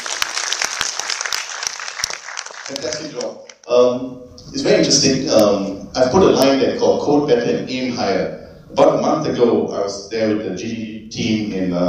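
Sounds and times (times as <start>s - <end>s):
audience applauding the organizers: 0.0s - 3.7s
speech: 2.7s - 11.8s.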